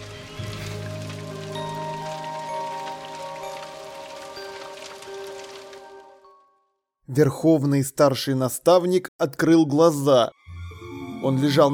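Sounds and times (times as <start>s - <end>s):
rain pattering onto wet mud and a small pile of ash: 0.0s - 6.3s
speech: 7.1s - 10.4s, 11.2s - 11.7s.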